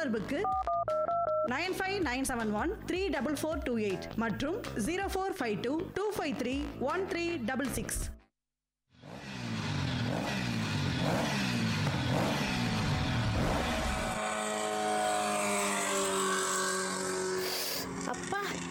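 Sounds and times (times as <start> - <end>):
speech: 0.0 - 0.8, 1.5 - 8.2
fast vehicles roaring past on a road: 9.1 - 18.6
steady high engine drone: 9.1 - 18.6.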